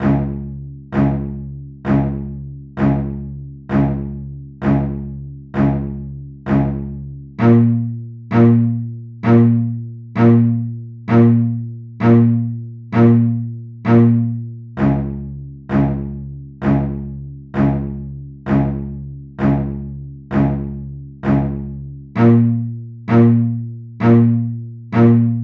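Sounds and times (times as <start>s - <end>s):
deep strings in C minor: 0.0s - 25.4s.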